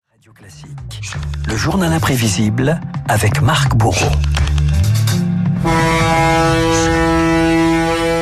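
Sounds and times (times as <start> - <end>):
speech: 0.2 - 4.4, 5.1 - 6.9
low tones: 4.1 - 8.2
foghorn of an ocean liner: 5.6 - 8.2.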